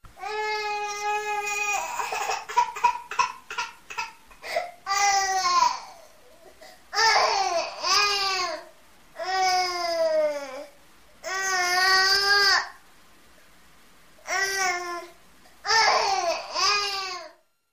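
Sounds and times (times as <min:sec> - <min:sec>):
infant crying after waking up: 0:00.2 - 0:06.2, 0:06.9 - 0:12.7, 0:14.3 - 0:17.4.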